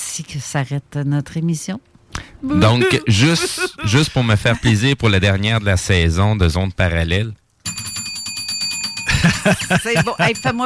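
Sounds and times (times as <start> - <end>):
speech: 0.2 - 7.4, 9.4 - 10.6
laughter: 2.4 - 4.8, 9.1 - 10.6
small hand bell shaken rapidly: 7.7 - 10.6.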